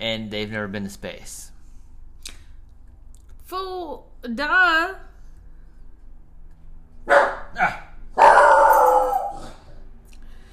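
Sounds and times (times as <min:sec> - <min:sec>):
speech: 0:00.0 - 0:01.5, 0:03.5 - 0:05.1, 0:07.1 - 0:07.9
dog barking: 0:07.1 - 0:09.6.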